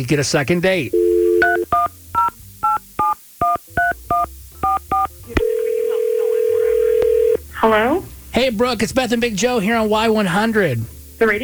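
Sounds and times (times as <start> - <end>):
speech: 0.0 - 1.2, 7.7 - 11.4
continuous telephone line tone: 0.9 - 1.9, 4.7 - 7.4
touch-tone dialing beeps as a phone number is dialed: 1.0 - 7.4.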